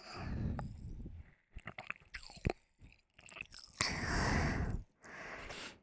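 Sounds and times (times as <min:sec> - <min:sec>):
sipping and swallowing a drink: 0:00.4 - 0:04.9.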